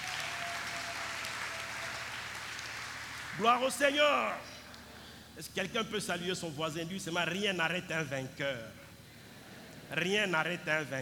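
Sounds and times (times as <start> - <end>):
church congregation clapping: 0.0 - 4.4
speech: 3.4 - 4.6, 5.4 - 8.8, 9.9 - 10.9.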